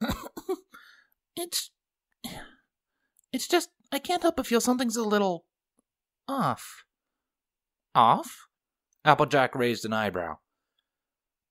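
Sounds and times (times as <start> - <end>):
woman clearing her throat: 0.0 - 0.7
speech: 1.4 - 2.4, 3.3 - 5.5, 6.3 - 6.9, 8.0 - 10.4.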